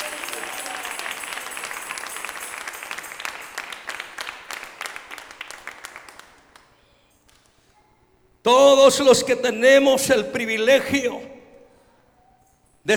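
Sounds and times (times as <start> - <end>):
audience applauding: 0.0 - 6.8
speech: 8.5 - 11.3.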